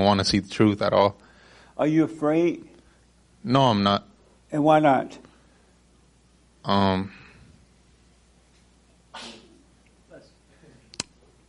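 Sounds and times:
speech: 0.0 - 1.2, 1.8 - 2.7, 3.4 - 5.3, 6.6 - 7.2
hiss: 0.0 - 11.4
sneeze: 9.1 - 9.7.

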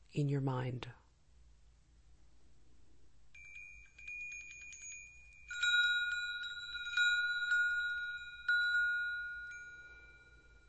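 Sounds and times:
speech: 0.1 - 1.0
small bells tinkling softly: 3.3 - 10.6.

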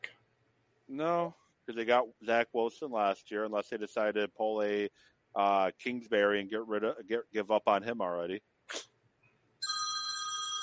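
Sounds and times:
speech: 0.9 - 8.9
telephone bell ringing: 9.6 - 10.6.

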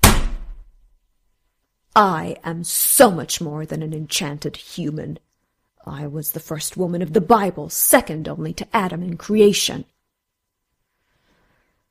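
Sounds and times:
woman's hand slammed down on a table: 0.0 - 0.7
speech: 2.0 - 9.9.

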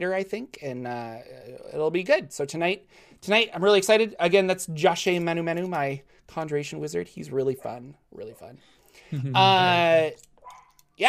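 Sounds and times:
speech: 0.0 - 10.3
dog barking: 10.4 - 10.8.

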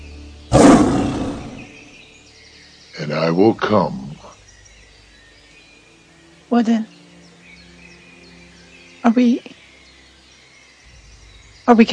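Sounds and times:
lion roaring: 0.5 - 1.8
speech: 3.0 - 4.0, 6.5 - 6.9, 9.0 - 9.6, 11.7 - 11.9.

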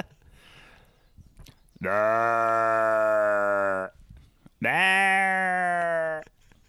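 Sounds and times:
person imitating a ram's call with bleating bellows: 1.8 - 4.0, 4.6 - 6.3.

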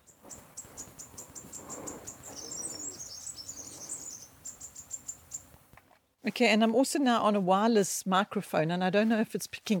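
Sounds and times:
steady pulsing insect-like chirr: 0.0 - 5.5
small birds singing in a garden: 0.0 - 5.6
soft outdoor noise: 0.0 - 9.7
speech: 6.2 - 9.7.

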